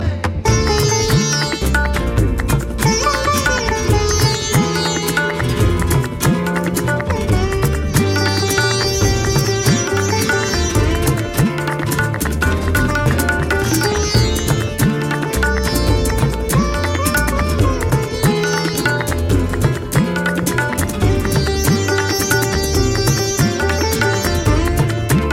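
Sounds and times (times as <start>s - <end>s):
guitar: 0.0s - 25.3s
sitar: 0.0s - 25.3s.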